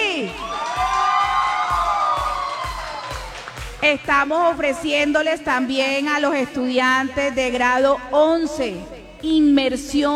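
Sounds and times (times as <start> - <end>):
students clapping in unison: 0.2 - 4.5
crowd of young students cheering and whooping: 0.3 - 3.8
speech: 3.8 - 10.1.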